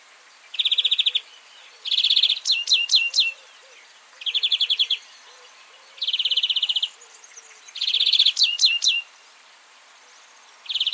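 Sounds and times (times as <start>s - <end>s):
European greenfinch Chloris chloris trills and chirps: 0.5s - 9.1s, 10.6s - 10.9s.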